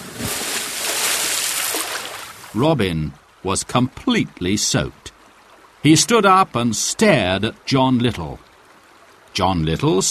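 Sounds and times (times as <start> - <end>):
splash of a person falling into a river: 0.0 - 2.5
speech: 2.6 - 5.2, 5.8 - 8.5, 9.4 - 10.1.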